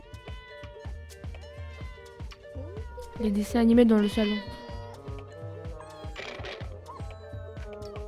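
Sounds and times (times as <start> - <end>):
cat meowing to come inside: 0.0 - 0.8, 1.4 - 3.2, 4.0 - 7.4
speech: 3.2 - 4.6.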